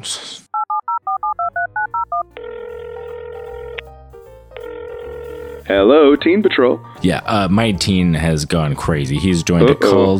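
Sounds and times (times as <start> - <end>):
speech: 0.0 - 0.3, 5.7 - 10.1
touch-tone keypad dialing beeps: 0.6 - 2.2
steady electronic telephone ringing tone on the line: 0.6 - 3.9, 4.6 - 5.7.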